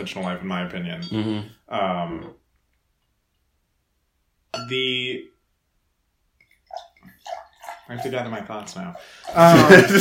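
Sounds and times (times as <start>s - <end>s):
speech: 0.0s - 2.4s, 4.7s - 5.3s, 7.2s - 9.9s
water pouring: 6.4s - 9.9s
laughter: 9.3s - 9.9s.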